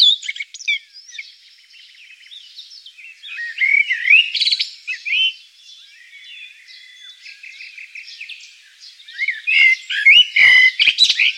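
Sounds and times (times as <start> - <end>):
blackbird singing fluting and twittering phrases: 0.0 - 11.3.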